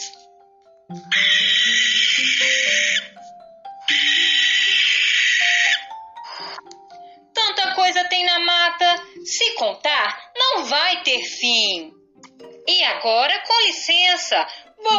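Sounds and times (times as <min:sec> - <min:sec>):
soft stepping melody: 0:00.2 - 0:09.8, 0:11.9 - 0:14.9
speech: 0:00.9 - 0:01.4, 0:09.6 - 0:12.0, 0:12.8 - 0:14.9
owl hooting: 0:00.9 - 0:03.2, 0:03.9 - 0:06.6.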